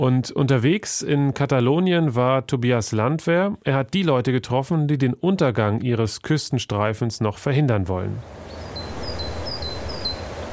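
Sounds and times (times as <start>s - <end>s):
speech: 0.0s - 8.4s
birds chirping: 8.3s - 10.5s.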